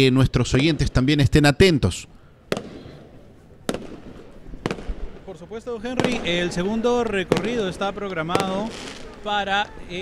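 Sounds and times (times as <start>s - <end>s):
speech: 0.0s - 2.2s, 5.4s - 10.0s
low murmur: 2.2s - 10.0s
fireworks exploding during a religious procession: 2.5s - 10.0s.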